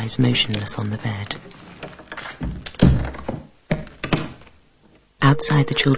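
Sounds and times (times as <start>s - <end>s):
speech: 0.0s - 1.6s, 5.3s - 5.9s
wooden door swinging shut with heavy thunk: 1.8s - 4.4s.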